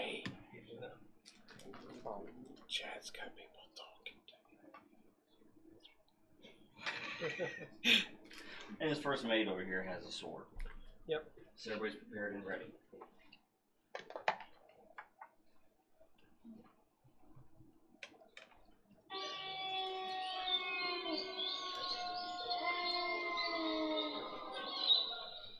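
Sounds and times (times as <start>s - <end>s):
speech: 2.1s - 3.6s, 7.2s - 13.2s
laughter: 6.8s - 8.2s
sustained warbling bird cry: 19.1s - 25.5s.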